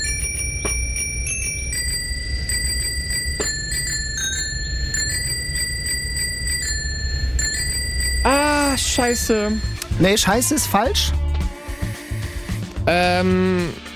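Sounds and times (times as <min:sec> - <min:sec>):
bicycle bell ringing a song melody: 0:00.0 - 0:11.1
speech: 0:09.0 - 0:11.2, 0:12.9 - 0:13.8.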